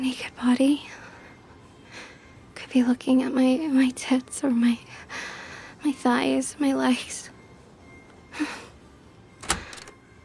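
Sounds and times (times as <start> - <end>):
speech: 0.0 - 1.0, 2.7 - 7.2, 8.4 - 8.6
hotel room door opening with a soft brushing swish: 9.4 - 9.9
sharp hotel room door latch click: 9.4 - 10.0.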